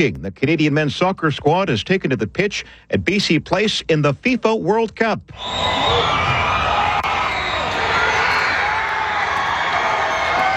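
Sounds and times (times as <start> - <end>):
speech: 0.0 - 6.6
stadium crowd roaring and cheering at a men's soccer goal: 5.4 - 10.5.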